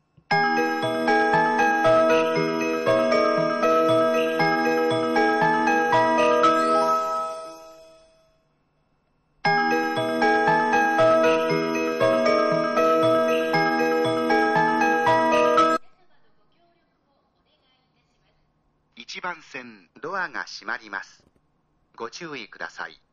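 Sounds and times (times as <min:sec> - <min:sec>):
station melody: 0:00.3 - 0:08.0, 0:09.5 - 0:15.8.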